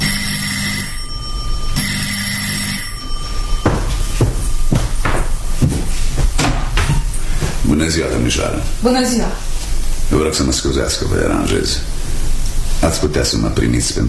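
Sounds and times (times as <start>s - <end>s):
doorbell ringing: 0.0s - 5.6s
sharp knocking or clattering thuds: 3.6s - 7.6s
speech: 7.8s - 9.5s, 10.1s - 11.9s, 12.8s - 14.0s.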